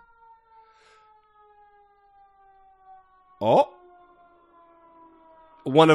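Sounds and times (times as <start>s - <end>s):
siren wailing: 0.0s - 5.9s
speech: 3.4s - 3.7s, 5.7s - 5.9s.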